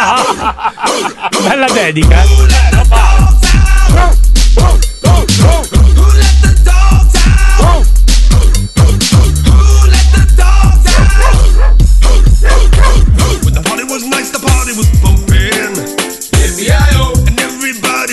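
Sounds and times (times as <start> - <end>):
laughter: 0.0 - 3.4
speech: 0.3 - 3.3
loud thumping dance track with a steady beat: 1.4 - 18.1
repeated dog barks and yelps layered over the music: 11.0 - 11.8, 12.4 - 13.0.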